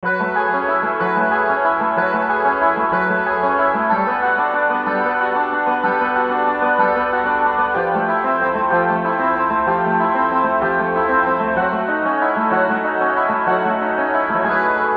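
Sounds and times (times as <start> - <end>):
virtual 12 string guitar: 0.0 - 14.9.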